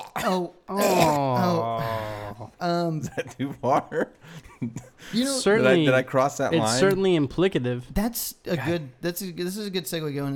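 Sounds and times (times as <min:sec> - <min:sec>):
exaggerated theatrical throat clearing and hacking: 0:00.0 - 0:02.6
speech: 0:00.2 - 0:10.3
laughter: 0:01.6 - 0:05.9.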